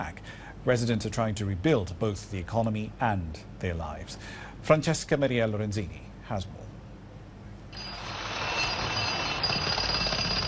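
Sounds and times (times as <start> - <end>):
speech: 0.0 - 6.6
power drill whirring in an old market: 7.7 - 10.4.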